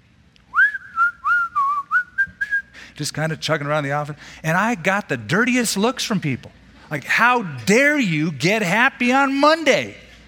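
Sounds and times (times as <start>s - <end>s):
person whistling a short cheerful melody: 0.5s - 2.8s
speech: 3.0s - 10.0s.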